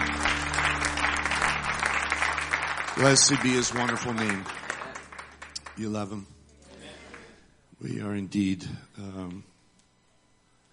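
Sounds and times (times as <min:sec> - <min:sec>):
church congregation clapping hands during a morning service: 0:00.0 - 0:06.2
faint low hum: 0:00.0 - 0:10.7
speech: 0:03.0 - 0:04.6, 0:05.8 - 0:06.3, 0:07.8 - 0:09.5.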